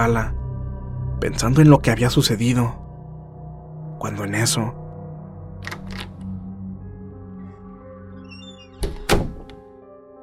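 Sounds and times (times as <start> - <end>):
speech: 0.0 - 0.4, 1.2 - 2.8, 4.0 - 4.8
steady low humming drone: 0.0 - 8.6
street door opening: 5.6 - 6.4, 8.1 - 9.7
double thunk of the door latch and frame: 8.8 - 9.6.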